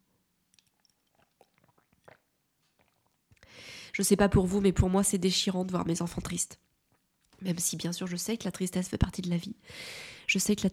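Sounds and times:
quiet wet mouth clicks from sipping water: 0.5 - 3.5
soft swallow of a small sip of water: 0.6 - 3.5
speech: 3.9 - 6.7, 7.4 - 10.7
brief breathy exhale: 9.7 - 10.3.

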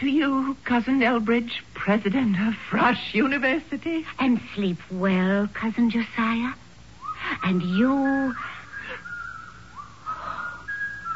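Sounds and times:
speech: 0.0 - 6.6, 7.3 - 8.6
soft hiss: 0.0 - 11.1
eerie wavering whistle in long sliding tones: 7.0 - 11.1.

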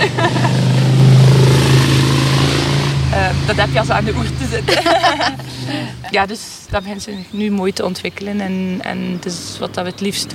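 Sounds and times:
laughter: 0.0 - 0.9, 4.0 - 6.2
motor engine droning: 0.0 - 6.1
speech: 3.5 - 10.3.

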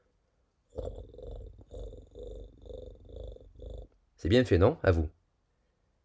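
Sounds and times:
cat purring: 0.7 - 4.0
speech: 4.2 - 5.2.

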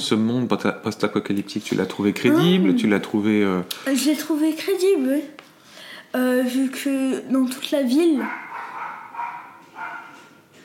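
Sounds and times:
speech: 0.0 - 5.5, 6.1 - 8.5
dog barking in agitated bursts with yelping tones: 8.2 - 10.4.

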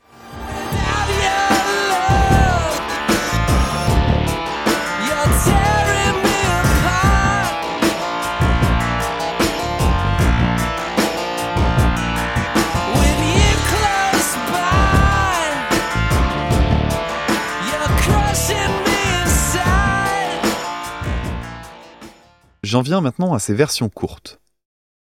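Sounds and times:
gritty distorted clavinet riff: 0.0 - 22.2
steady drums: 0.7 - 22.2
funky bass groove: 0.8 - 1.4, 2.1 - 4.6, 5.3 - 7.6, 8.3 - 14.1, 14.7 - 17.2, 17.9 - 20.2, 21.0 - 21.7
speech: 22.7 - 24.5.

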